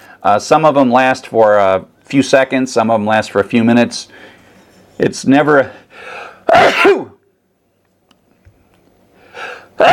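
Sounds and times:
speech: 0.2 - 4.3, 5.0 - 7.1, 9.8 - 9.9
person sneezing: 6.4 - 7.2, 9.4 - 9.9.

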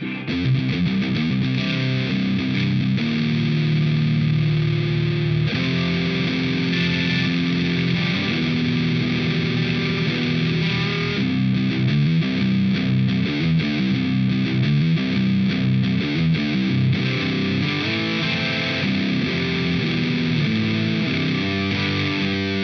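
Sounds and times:
heavy distorted electric guitar through Friedman BE100 amp: 0.0 - 22.6.

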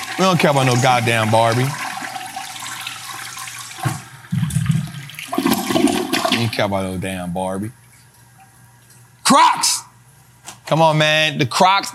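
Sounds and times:
toilet flushing: 0.0 - 6.7
speech: 0.2 - 1.8, 6.6 - 7.8, 9.3 - 9.8, 10.7 - 11.9.

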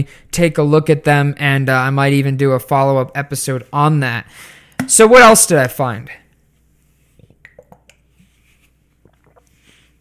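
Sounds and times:
speech: 0.0 - 6.2
person sipping water: 7.1 - 9.9
gulping swallows of water: 9.0 - 9.6.

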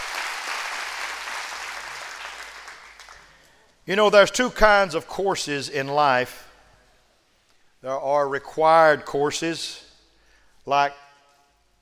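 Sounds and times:
audience clapping hands: 0.0 - 3.6
speech: 3.9 - 6.5, 7.8 - 9.8, 10.6 - 11.0.

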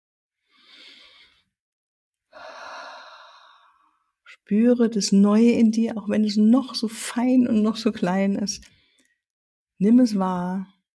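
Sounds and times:
deep breathing in and out during a guided relaxation exercise: 0.4 - 1.5, 2.3 - 4.1
speech: 4.3 - 8.8, 9.8 - 10.8.

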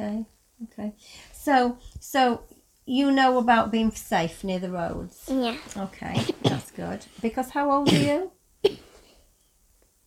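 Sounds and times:
speech: 0.2 - 8.8
six-year-old child coughing: 7.8 - 8.9.

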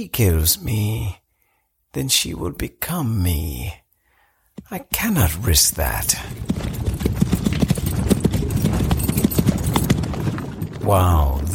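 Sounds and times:
speech: 0.0 - 1.2, 1.9 - 3.8, 4.6 - 6.7, 10.9 - 11.5
hoofbeats of horses ridden at pace: 4.6 - 11.5.

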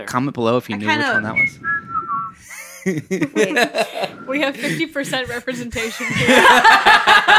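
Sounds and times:
speech: 0.0 - 1.8, 2.4 - 7.3
person whistling a short high note: 0.9 - 2.7, 4.0 - 4.6
laughter: 2.4 - 7.3.

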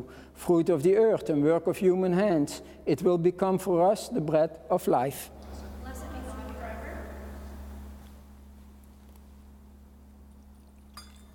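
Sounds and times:
speech: 0.0 - 5.6
steady low electrical hum: 0.0 - 11.3
water poured into wine in a chalice: 10.2 - 11.3.

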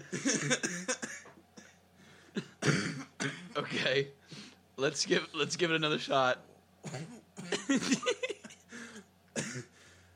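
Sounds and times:
person coughing harshly while eating banana bread: 0.0 - 3.8, 6.8 - 9.8
speech: 0.1 - 1.0, 3.8 - 4.2, 4.8 - 8.2.

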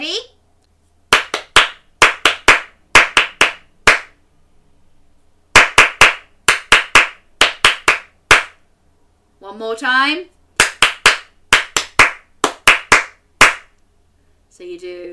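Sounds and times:
crisp hand claps in a rhythmic pattern: 1.1 - 4.2, 5.5 - 8.6, 10.6 - 13.8
speech: 9.6 - 10.4, 14.6 - 15.1.

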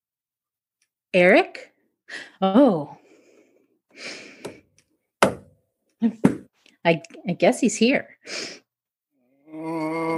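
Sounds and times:
speech: 1.1 - 3.0, 6.0 - 8.6, 9.6 - 10.1
soft breath sounds: 3.0 - 4.8
sharp knocks on wood: 5.2 - 5.5.

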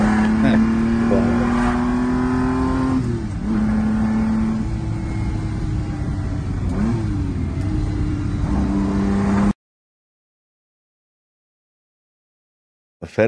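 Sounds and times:
Ferrari 250 GT sports car engine revving: 0.0 - 9.5.

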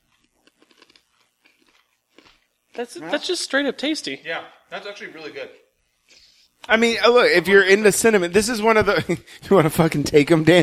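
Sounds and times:
crunchy clove snack chewing: 0.0 - 2.9
speech: 2.8 - 5.6, 6.7 - 10.6.

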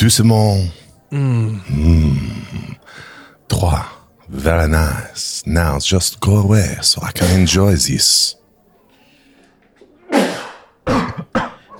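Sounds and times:
speech: 0.0 - 8.4
person sneezing: 10.0 - 11.7.

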